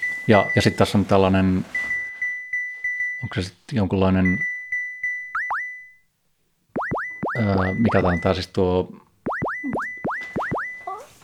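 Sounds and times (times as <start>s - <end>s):
speech: 0.3s - 1.8s, 3.2s - 4.5s, 7.4s - 9.0s
synthesizer tom with oscillator shaped by envelope sweeping upward: 5.0s - 6.0s, 6.8s - 8.3s, 9.3s - 10.9s.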